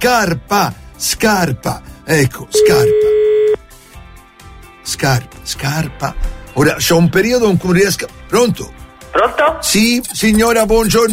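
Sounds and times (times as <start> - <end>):
speech: 0.0 - 3.1, 4.9 - 11.1
steady electronic tone of a telephone call being dialed: 2.6 - 3.6.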